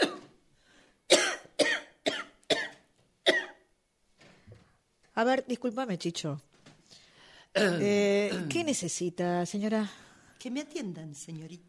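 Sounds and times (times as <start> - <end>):
woman coughing from fever: 0.0 - 0.3, 1.1 - 3.7, 7.6 - 8.7
speech: 5.2 - 6.5, 7.6 - 11.6.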